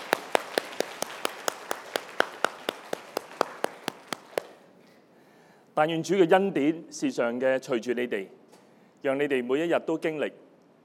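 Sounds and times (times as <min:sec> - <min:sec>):
church audience clapping in rhythm: 0:00.0 - 0:04.7
speech: 0:05.8 - 0:08.4, 0:09.0 - 0:10.4.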